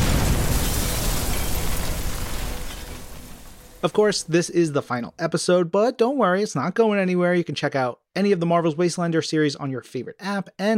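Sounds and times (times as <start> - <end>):
explosion effect for a living-bomb burst power: 0.0 - 3.5
speech: 3.8 - 10.7.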